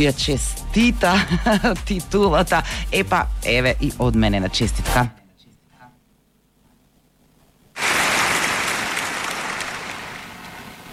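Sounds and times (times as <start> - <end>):
speech: 0.0 - 5.2
crowd applauding a league title win: 7.8 - 10.5.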